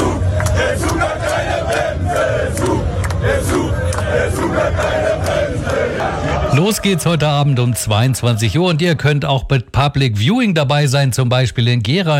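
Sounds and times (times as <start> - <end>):
German football fans shouting on Times Square in New York: 0.0 - 9.1
speech: 6.5 - 12.1.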